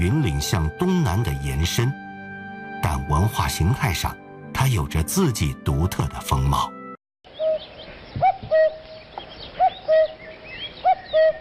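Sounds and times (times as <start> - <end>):
speech: 0.0 - 2.0, 2.8 - 6.8
cuckoo calling a two-note coo: 7.3 - 11.3.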